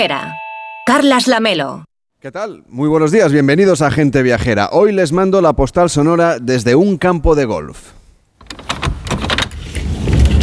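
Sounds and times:
speech: 0:00.0 - 0:08.7
door opening with click and rattling mechanical clacks: 0:08.4 - 0:10.4.

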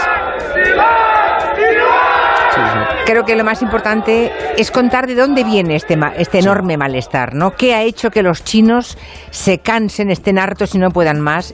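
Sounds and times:
large crowd of protesters shouting: 0:00.0 - 0:07.4
speech: 0:03.1 - 0:11.5.

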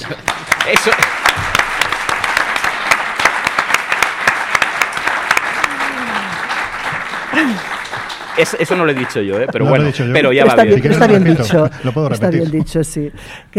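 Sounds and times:
crowd applauding: 0:00.0 - 0:10.5
speech: 0:00.1 - 0:01.6, 0:07.4 - 0:07.7, 0:08.4 - 0:13.5
laughter: 0:05.7 - 0:13.0.

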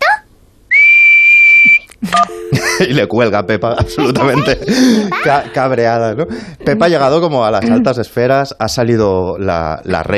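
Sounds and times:
single steady high whistle: 0:00.7 - 0:01.9
speech: 0:02.5 - 0:10.1
laughter: 0:03.8 - 0:05.9
brief scrap of a voice or breathy sound: 0:04.4 - 0:05.3.

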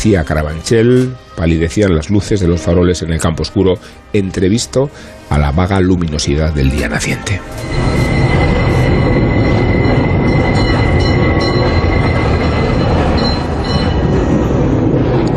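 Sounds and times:
speech: 0:00.0 - 0:08.1
train rolling along the rails: 0:06.8 - 0:15.3
high metallic wheel squeal: 0:07.4 - 0:15.0.

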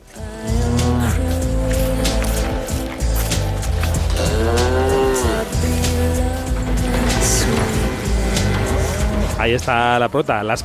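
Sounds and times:
music added to a documentary film: 0:00.0 - 0:10.6
cows mooing on a farm: 0:00.4 - 0:01.7, 0:03.8 - 0:10.1
speech: 0:09.5 - 0:10.6.

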